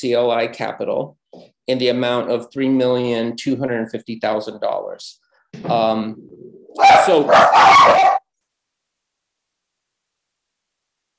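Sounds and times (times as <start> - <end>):
speech: 0.0 - 8.2
dogs barking: 6.8 - 8.2.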